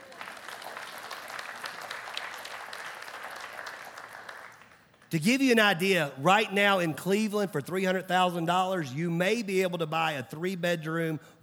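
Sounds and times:
audience applause: 0.0s - 5.1s
speech: 5.1s - 11.4s.

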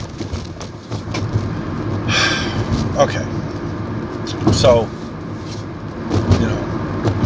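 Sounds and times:
car wheels thumping on rails: 0.0s - 3.0s, 4.2s - 4.9s, 6.0s - 7.2s
car rolling over railroad tracks: 0.0s - 7.2s
road noise hiss: 0.0s - 7.2s
speech: 3.0s - 3.5s, 4.6s - 5.0s.

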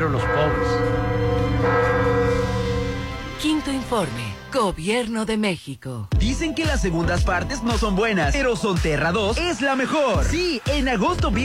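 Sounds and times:
speech: 0.0s - 1.9s, 3.4s - 11.4s
bells of a restored cathedral ringing: 0.0s - 3.7s.

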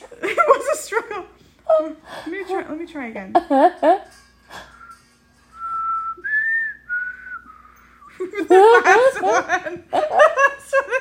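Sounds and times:
speech: 1.8s - 4.1s
person whistling a short wavering tune: 4.5s - 8.2s
laughter: 8.1s - 10.9s.

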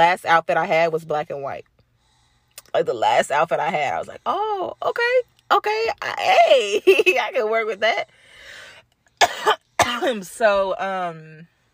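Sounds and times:
speech: 0.0s - 1.7s, 2.6s - 8.5s, 9.2s - 11.5s
person coughing: 9.2s - 10.2s.

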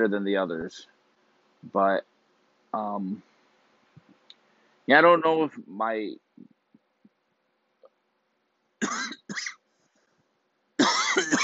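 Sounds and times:
speech: 0.0s - 1.0s, 1.6s - 2.1s, 2.7s - 3.3s, 4.9s - 6.5s
harsh rasping coughs: 8.8s - 9.6s, 10.8s - 11.4s.

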